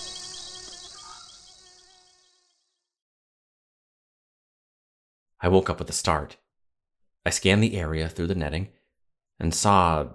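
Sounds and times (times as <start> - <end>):
crickets chirping at night in a swamp: 0.0 - 2.7
faint insect buzzing: 0.0 - 3.0
speech: 5.4 - 6.4, 7.2 - 8.8, 9.4 - 10.1.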